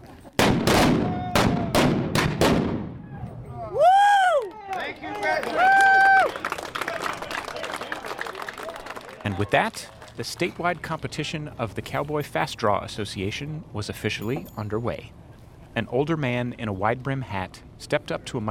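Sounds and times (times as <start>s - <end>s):
antique cannon firing: 0.4s - 3.1s
people whooping and cheering: 1.0s - 1.8s, 3.1s - 10.5s
speech: 9.3s - 15.2s, 15.8s - 18.5s.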